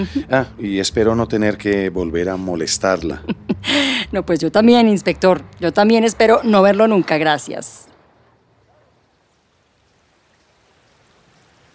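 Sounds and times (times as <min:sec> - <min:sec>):
speech: 0:00.0 - 0:07.9
flowing stream water in a park: 0:06.4 - 0:11.7.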